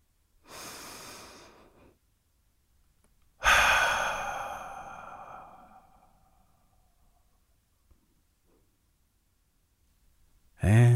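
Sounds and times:
person taking a deep slow breath: 0.4 - 2.0, 3.4 - 6.6.

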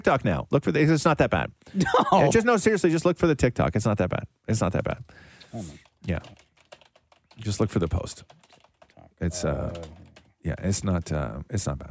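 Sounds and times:
speech: 0.0 - 6.4, 7.4 - 8.4, 9.2 - 11.8
soft typing on a computer keyboard: 5.8 - 10.7.

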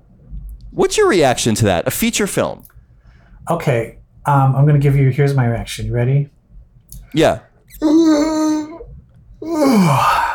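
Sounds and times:
speech: 0.8 - 2.7, 3.4 - 6.4, 7.1 - 8.4, 9.4 - 10.2
person yawning loudly: 7.7 - 10.3.

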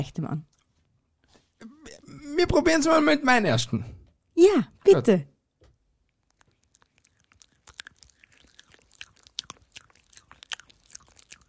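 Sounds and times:
speech: 0.0 - 0.6, 1.6 - 5.3
person chewing something crunchy: 6.1 - 11.4.

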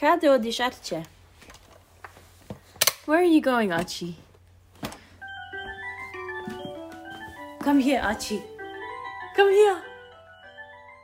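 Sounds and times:
speech: 0.0 - 1.2, 3.1 - 4.2, 7.6 - 8.5, 9.4 - 9.9
electronic toy car playing a tinny looping jingle: 5.2 - 11.0.

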